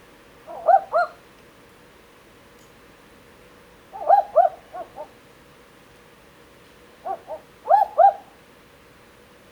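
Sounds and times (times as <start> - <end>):
faint hiss: 0.0 - 9.4
two barking owls calling with dog-like hoots at night: 0.5 - 1.2, 3.9 - 5.2, 7.0 - 8.4.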